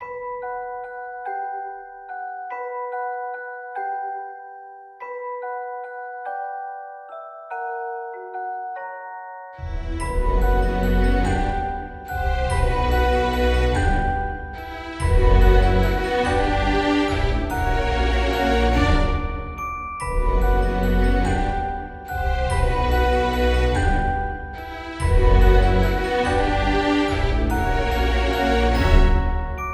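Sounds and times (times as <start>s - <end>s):
wheel music loop: 9.6s - 29.7s.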